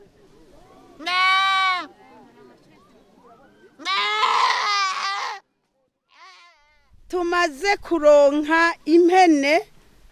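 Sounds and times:
low murmur: 0.0 - 4.5
goats tied up in the grass bleating: 1.0 - 1.9, 3.8 - 5.4, 6.1 - 6.8
speech: 7.2 - 9.7.

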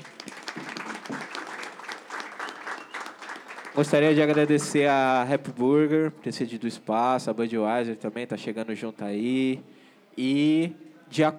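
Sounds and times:
audience applause at a panel event: 0.0 - 5.3
speech: 3.8 - 11.3.

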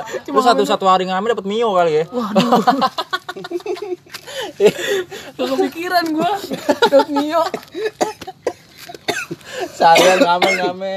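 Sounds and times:
speech: 0.2 - 8.3, 9.8 - 10.9
laughter: 2.1 - 10.8
man coughing: 6.2 - 10.9.

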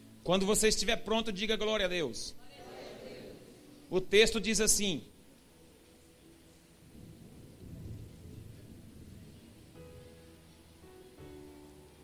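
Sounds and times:
faint sustained musical tones: 0.0 - 12.0
speech: 0.2 - 2.4, 3.9 - 5.1
steady heavy rain hissing in a storm: 6.2 - 12.0
deep thunder rolling and rumbling: 6.8 - 10.2.

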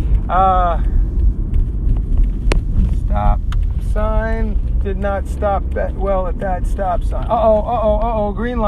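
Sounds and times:
car engine rumbling as car pulls away: 0.0 - 8.6
speech: 0.3 - 0.9, 4.8 - 8.6.

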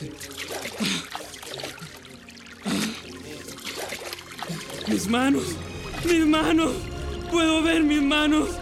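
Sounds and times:
water trickling and splashing in a pool: 0.0 - 7.9
speech: 4.9 - 8.6.

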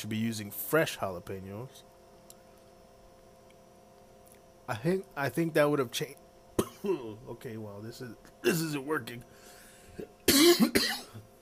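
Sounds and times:
speech: 0.0 - 1.9, 4.7 - 6.2, 6.8 - 11.0
person coughing harshly: 6.6 - 7.2, 10.0 - 11.2.

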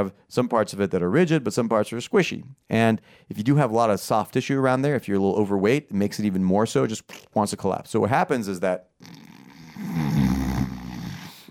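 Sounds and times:
speech: 0.0 - 10.2
person imitating snoring: 9.0 - 11.4.

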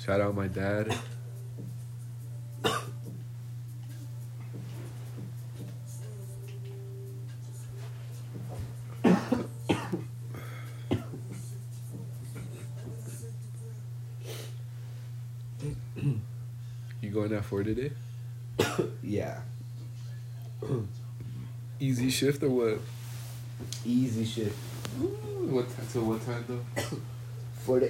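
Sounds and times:
speech: 0.0 - 1.7, 17.5 - 19.5, 20.6 - 21.0, 21.8 - 23.0, 23.6 - 27.8
steady low electrical hum: 0.0 - 27.8
person clearing throat: 0.9 - 1.2, 2.6 - 3.0, 9.0 - 11.2, 15.6 - 16.3, 18.6 - 19.0, 20.6 - 20.9, 26.8 - 27.1
person coughing in short harsh bursts: 0.9 - 1.2, 2.6 - 3.0, 9.0 - 11.2, 15.6 - 16.3, 18.6 - 19.0, 20.6 - 20.9, 26.8 - 27.1.

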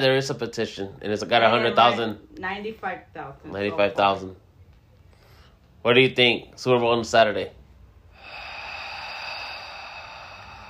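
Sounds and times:
speech: 0.0 - 4.4, 5.8 - 7.6
heavy breath forced out: 8.1 - 10.6.

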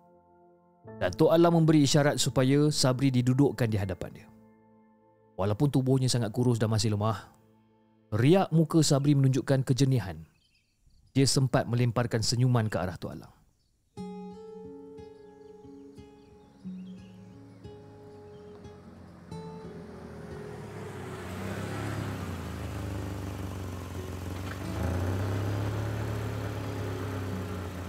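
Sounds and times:
speech: 0.8 - 4.3, 5.4 - 7.4, 8.1 - 10.3, 11.1 - 13.4
patrol car engine driving into the yard: 16.5 - 27.8.

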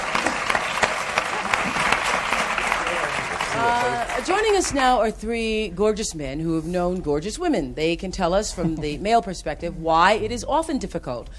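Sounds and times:
studio audience applause: 0.0 - 4.8
speech: 4.2 - 11.3.

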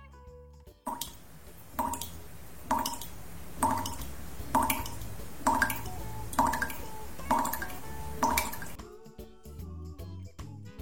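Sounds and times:
tap dripping: 0.9 - 8.8.

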